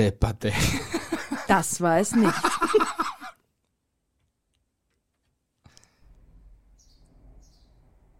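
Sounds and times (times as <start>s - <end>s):
speech: 0.0s - 3.0s
laughter: 0.5s - 3.4s
brief high bird chirps: 6.7s - 7.9s.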